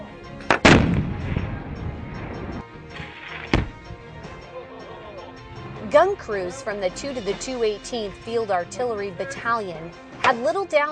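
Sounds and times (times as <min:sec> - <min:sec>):
C4 explosive charges detonating during an engineer training exercise: 0:00.6 - 0:02.7
speech: 0:05.9 - 0:10.9.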